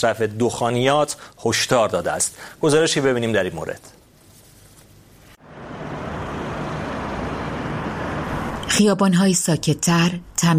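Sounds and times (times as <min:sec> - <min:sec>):
speech: 0:00.0 - 0:04.0, 0:08.7 - 0:10.5
dense city street traffic roar of cars and heavier vehicles: 0:05.4 - 0:10.5.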